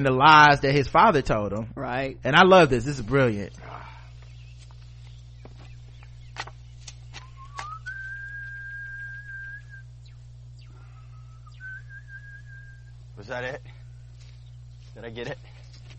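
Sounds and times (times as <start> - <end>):
speech: 0.0 - 3.9, 13.3 - 13.7, 15.0 - 15.5
steady low hum: 0.0 - 15.9
person whistling a short signal tune: 7.2 - 9.8, 11.0 - 12.9.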